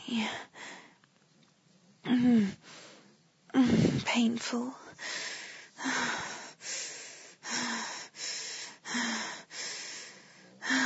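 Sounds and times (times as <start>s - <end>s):
speech: 0.0s - 0.6s, 4.2s - 4.8s
heavy rapid panting breaths: 5.0s - 10.8s.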